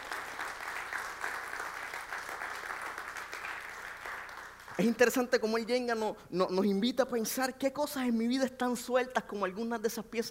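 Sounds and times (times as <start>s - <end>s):
audience applauding loudly: 0.0s - 5.2s
speech: 4.8s - 10.3s.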